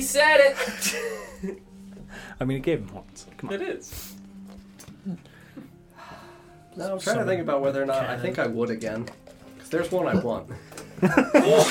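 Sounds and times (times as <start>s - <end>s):
speech: 0.0s - 4.2s, 5.0s - 5.3s, 6.8s - 11.6s
person sneezing: 3.9s - 4.2s.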